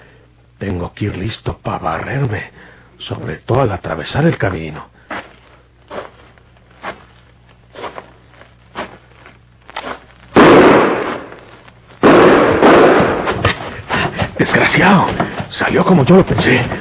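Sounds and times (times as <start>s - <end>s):
speech: 0.6s - 5.0s, 14.5s - 16.7s
long loud roaring crackling blast noise: 10.2s - 15.0s
gunshots fired at a person: 10.4s - 13.7s.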